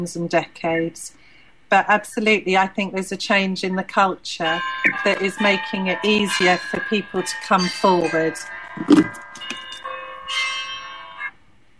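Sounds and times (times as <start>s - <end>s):
speech: 0.0s - 9.4s
church bells pealing: 4.6s - 11.3s.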